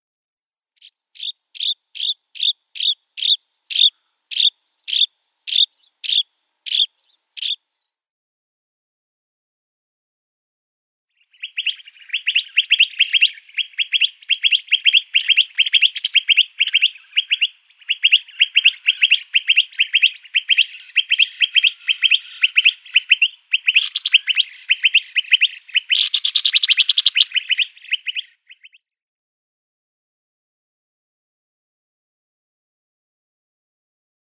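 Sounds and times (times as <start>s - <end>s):
Eastern Rock Nuthatch calls: 0.8s - 7.6s, 11.2s - 28.8s.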